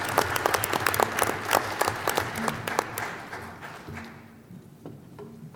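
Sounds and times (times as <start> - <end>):
audience at a board meeting applauding athletes: 0.0 - 4.4.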